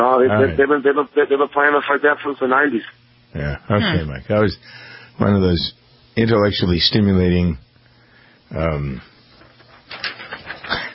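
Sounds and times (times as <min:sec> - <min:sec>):
speech: 0:00.2 - 0:07.6, 0:08.5 - 0:09.1
paper page being turned: 0:09.3 - 0:10.9.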